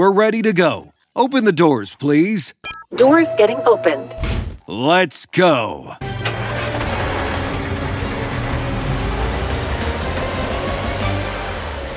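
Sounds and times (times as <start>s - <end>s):
speech: 0.0s - 6.1s
toy truck engine rumble driving through city streets: 6.0s - 11.9s.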